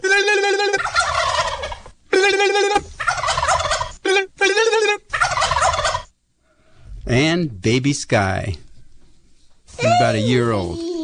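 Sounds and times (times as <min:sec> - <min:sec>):
wild turkeys gobbling: 0:00.0 - 0:06.2
speech: 0:07.4 - 0:08.6, 0:09.9 - 0:10.9.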